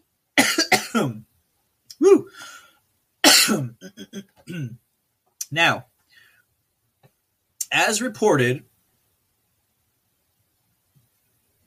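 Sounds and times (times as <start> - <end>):
coughing and throat clearing from an itch in the throat: 0.4 - 1.2, 3.2 - 4.8
speech: 1.0 - 1.3, 2.0 - 2.6, 3.5 - 4.8, 5.5 - 5.9, 7.7 - 8.7
voiced exclamation: 1.9 - 2.4.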